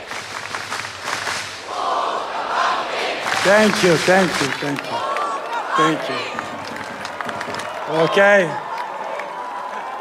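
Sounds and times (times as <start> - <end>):
crowd cheering and clapping: 0.0 - 9.9
large crowd chanting a name in unison: 1.6 - 7.7
speech: 3.4 - 5.0, 5.8 - 6.5, 7.9 - 8.7.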